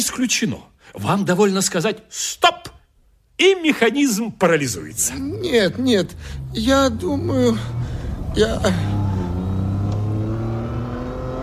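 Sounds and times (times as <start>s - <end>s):
speech: 0.0s - 2.7s, 3.4s - 9.0s
car engine humming and revving: 4.6s - 11.4s.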